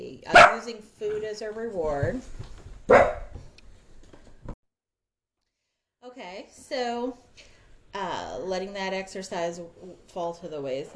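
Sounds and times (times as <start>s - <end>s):
speech: 0.2s - 3.0s, 6.2s - 10.9s
female dog barking: 0.3s - 0.7s, 2.9s - 3.4s
female dog yipping: 2.9s - 3.3s.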